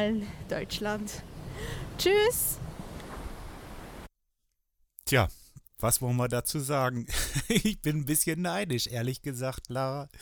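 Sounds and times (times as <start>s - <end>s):
speech: 0.0s - 2.7s, 5.1s - 10.2s
wind on a beach: 0.0s - 4.1s
laughter: 7.1s - 8.3s.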